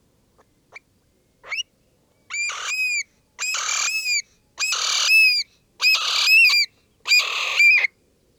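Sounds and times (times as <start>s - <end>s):
Eurasian stone-curlew giving harsh wailing cries: 2.3s - 7.9s.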